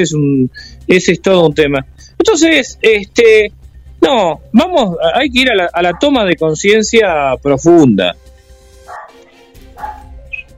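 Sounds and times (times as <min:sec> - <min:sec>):
speech: 0:00.0 - 0:08.2
discontented female dog barking in yelps: 0:05.8 - 0:06.2, 0:08.9 - 0:10.4.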